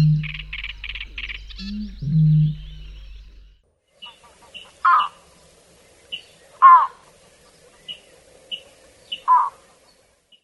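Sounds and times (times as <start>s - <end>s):
wetland birds calling: 0.0s - 3.4s, 4.0s - 5.3s, 6.0s - 9.6s
low droning hum: 0.0s - 3.6s.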